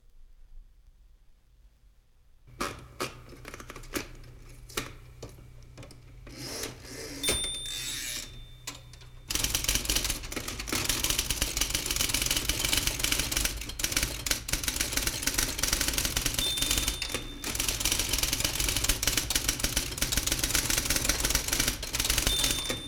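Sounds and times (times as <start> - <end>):
IBM electric typewriter: 2.5 - 5.0, 6.3 - 22.8.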